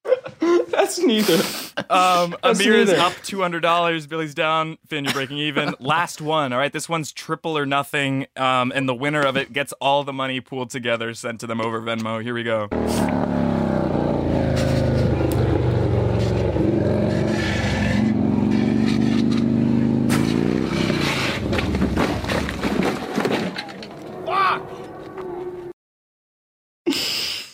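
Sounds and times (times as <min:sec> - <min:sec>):
speech: 0:00.8 - 0:13.4
loud motorcycle engine rumbling and revving: 0:12.7 - 0:25.6.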